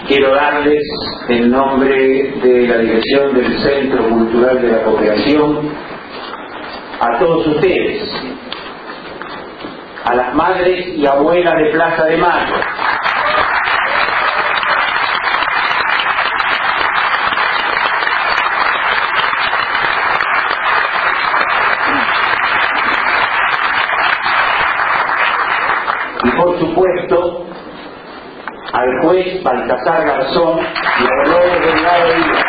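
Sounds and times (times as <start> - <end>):
speech: 0.1 - 6.0, 7.0 - 8.4, 10.1 - 13.0, 26.4 - 27.3, 28.8 - 32.4
audience applause at a welcome for guests at a cultural center event in Argentina: 12.4 - 26.2, 30.6 - 32.4.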